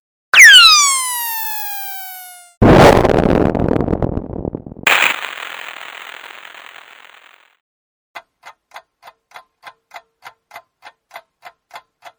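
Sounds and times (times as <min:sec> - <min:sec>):
firework whistling: 0:00.4 - 0:03.0, 0:04.8 - 0:07.4
firework sizzling and popping: 0:00.4 - 0:07.5
firework bursting into crackling explosion: 0:00.9 - 0:07.4.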